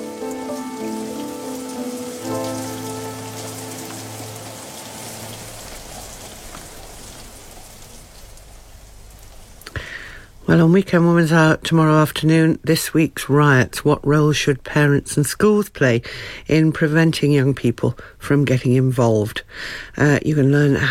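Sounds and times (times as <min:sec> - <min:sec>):
sustained musical tones: 0:00.0 - 0:06.4
rain falling on a surface in a steady hiss: 0:00.0 - 0:11.7
speech: 0:10.5 - 0:20.8.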